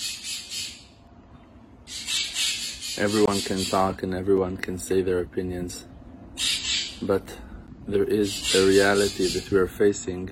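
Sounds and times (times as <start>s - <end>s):
harsh raspy bird squawks: 0.0s - 1.0s, 1.8s - 4.0s, 6.3s - 7.1s, 8.2s - 9.7s
speech: 3.0s - 5.9s, 7.0s - 10.3s.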